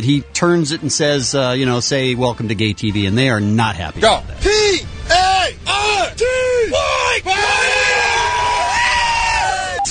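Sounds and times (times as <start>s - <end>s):
speech: 0.0s - 4.9s
group of young men shouting a chant: 5.1s - 9.9s
sustained ragged collective yell of young men: 5.7s - 9.9s.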